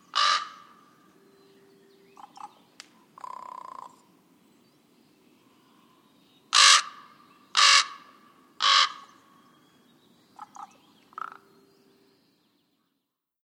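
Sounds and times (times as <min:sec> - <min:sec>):
common raven croaking: 0:00.0 - 0:00.8, 0:02.2 - 0:04.1, 0:06.5 - 0:09.2, 0:10.4 - 0:11.5.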